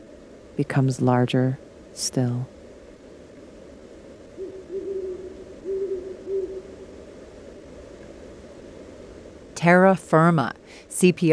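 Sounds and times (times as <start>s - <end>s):
speech: 0.6s - 2.5s, 9.6s - 11.3s
owl hooting in the outdoor night: 4.3s - 7.0s.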